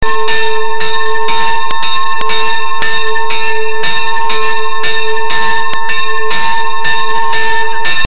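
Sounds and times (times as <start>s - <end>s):
bell ringing: 0.0s - 8.1s.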